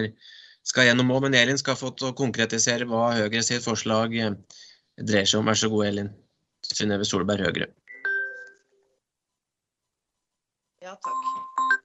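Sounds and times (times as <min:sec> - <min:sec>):
speech: 0:00.0 - 0:07.8, 0:10.8 - 0:11.3
telephone electronic chime during a meeting: 0:07.9 - 0:08.6.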